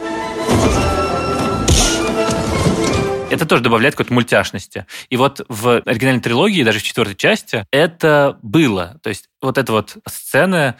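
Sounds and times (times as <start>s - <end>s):
steady musical background: 0.0s - 3.7s
exaggerated movie-style punch impacts: 0.4s - 3.1s
speech: 3.5s - 10.7s.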